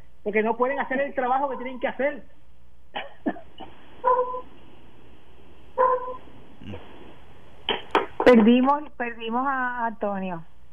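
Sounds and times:
speech: 0:00.2 - 0:04.5, 0:08.3 - 0:10.5
dog barking over a phone line: 0:04.0 - 0:04.4, 0:05.8 - 0:06.2.

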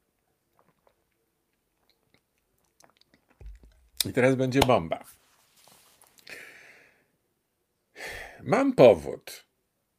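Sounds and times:
sipping water from a copper cup: 0:00.4 - 0:04.0
swallowing: 0:00.6 - 0:04.0
speech: 0:04.0 - 0:05.2, 0:08.5 - 0:09.5.

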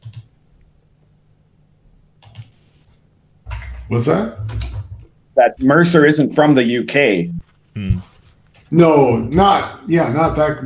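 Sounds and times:
loud computer keyboard clacking: 0:00.0 - 0:00.3, 0:02.2 - 0:02.5
quiet hum: 0:00.0 - 0:10.6
speech: 0:03.9 - 0:04.5, 0:05.4 - 0:08.1, 0:08.7 - 0:10.6.

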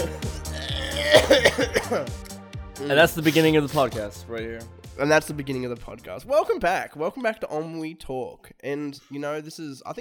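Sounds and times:
low guttural vocal noise: 0:00.4 - 0:01.8
rough throaty coughs: 0:00.6 - 0:02.1
speech: 0:01.3 - 0:09.9.

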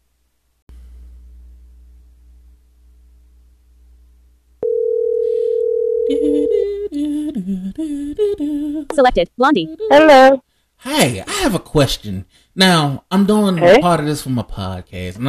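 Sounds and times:
low telephone line hum: 0:00.7 - 0:09.0
telephone ringing tone on a call line: 0:04.6 - 0:06.6
speech: 0:07.5 - 0:15.2.

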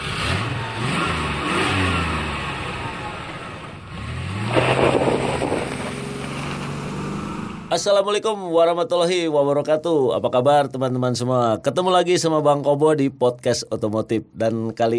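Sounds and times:
car engine cranking on the starter and revving: 0:00.0 - 0:07.8
speech: 0:07.8 - 0:14.9.

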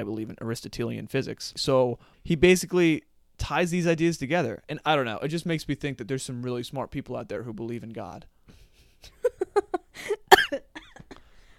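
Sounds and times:
speech: 0:00.0 - 0:09.2
person coughing: 0:10.0 - 0:11.2.

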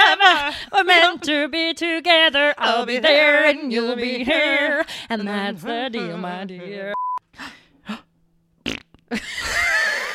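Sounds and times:
speech: 0:00.6 - 0:08.0, 0:08.7 - 0:10.1
fart: 0:08.6 - 0:09.1.

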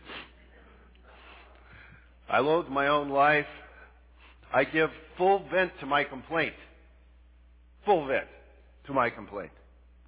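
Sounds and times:
nasal sniffle: 0:00.0 - 0:00.4
low steady hiss: 0:00.0 - 0:10.0
speech: 0:02.3 - 0:03.6, 0:04.5 - 0:06.7, 0:07.8 - 0:09.6.

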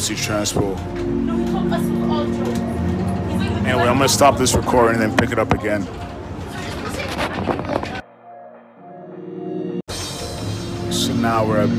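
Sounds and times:
speech: 0:00.0 - 0:02.8, 0:03.4 - 0:06.1, 0:11.2 - 0:11.7
city transit bus road and engine noise: 0:00.0 - 0:08.0.

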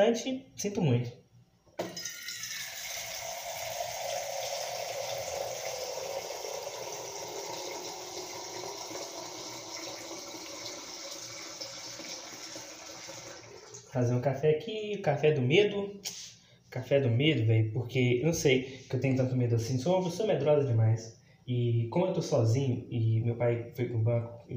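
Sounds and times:
speech: 0:00.0 - 0:01.2, 0:14.0 - 0:24.5
filtered water pouring from a tap into a container: 0:01.9 - 0:13.9.

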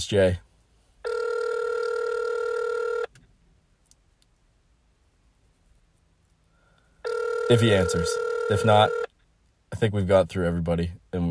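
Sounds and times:
speech: 0:00.0 - 0:00.4, 0:07.5 - 0:09.0, 0:09.7 - 0:11.2
outgoing phone call ringback tone: 0:01.1 - 0:03.1, 0:07.0 - 0:09.1.

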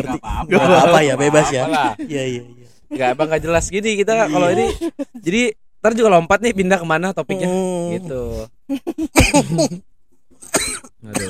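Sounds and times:
laughter: 0:00.0 - 0:02.3, 0:04.2 - 0:05.2, 0:08.8 - 0:09.8
speech: 0:00.0 - 0:09.9, 0:10.5 - 0:11.2
short coughs and harsh rasping cough: 0:09.1 - 0:09.8, 0:10.4 - 0:11.2.

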